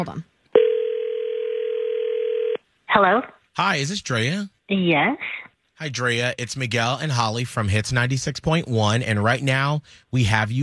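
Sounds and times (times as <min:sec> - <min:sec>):
speech: 0:00.0 - 0:00.3, 0:02.9 - 0:10.6
telephone dial tone while placing a call: 0:00.6 - 0:02.6.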